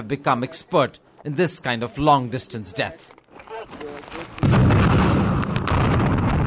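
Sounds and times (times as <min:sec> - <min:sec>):
speech: 0:00.0 - 0:03.2
big explosion blast from a planted explosive device in a war zone: 0:04.4 - 0:06.4.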